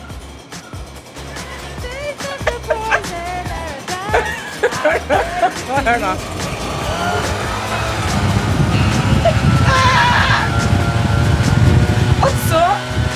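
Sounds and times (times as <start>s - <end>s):
leaf blower roaring as a wind effect: 0.0s - 13.1s
low hum: 0.0s - 13.1s
people laughing: 0.5s - 10.9s
speech: 5.1s - 6.5s.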